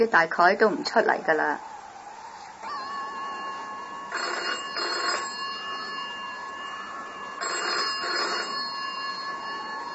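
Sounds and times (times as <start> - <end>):
speech: 0.0 - 1.7
faint steady hum: 0.0 - 9.9
telephone ringing during a typhoon: 2.6 - 9.9.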